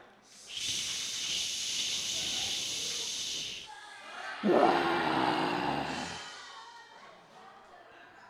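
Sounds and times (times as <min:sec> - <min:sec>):
large crowd making hissing shush imitating torrential rain: 0:00.0 - 0:06.3
crowd rumbling roar of voices imitating thunder: 0:04.2 - 0:06.4.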